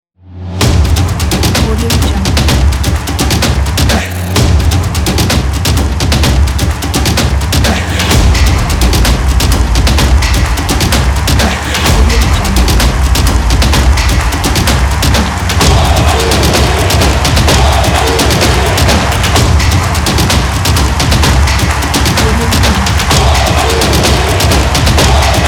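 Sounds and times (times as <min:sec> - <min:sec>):
football percussion: 0:00.6 - 0:25.4.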